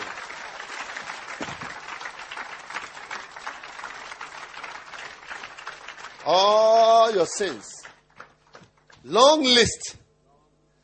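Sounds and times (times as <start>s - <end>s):
congregation clapping: 0.0s - 9.4s
speech: 6.3s - 7.8s, 9.0s - 10.0s.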